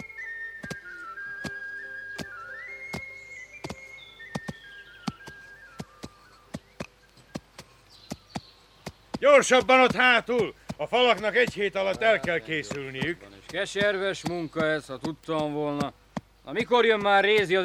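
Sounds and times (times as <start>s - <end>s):
man whistling a jaunty march tune: 0.0s - 7.6s
heavy thuds of clubs tamping earth between planks: 0.0s - 17.6s
speech: 9.2s - 17.6s.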